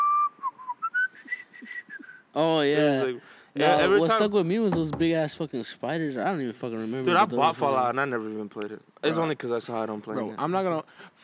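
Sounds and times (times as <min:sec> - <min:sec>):
person whistling a bright melody imitating a video game chime: 0:00.0 - 0:02.2
speech: 0:02.4 - 0:11.2.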